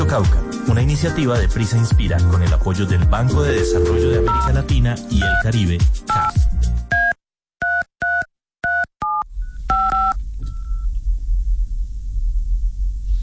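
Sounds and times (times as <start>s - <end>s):
speech: 0.1s - 6.4s
telephone number dialed on a keypad: 3.6s - 4.5s, 7.6s - 10.8s
steady low rumble with faint tones: 10.2s - 13.2s.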